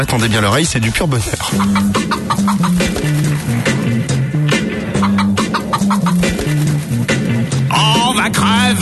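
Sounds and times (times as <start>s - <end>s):
speech: 0.0s - 3.5s
upbeat novelty song with bouncy bass line and steady beat: 0.0s - 8.8s
chicken clucking sounds woven into the music: 1.2s - 7.1s.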